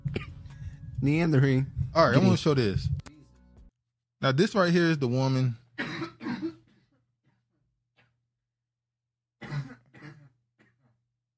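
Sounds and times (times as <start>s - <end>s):
person coughing harshly and wetly: 0.0s - 0.5s, 5.8s - 7.4s, 9.4s - 11.0s
speech: 1.0s - 3.0s, 4.2s - 5.6s.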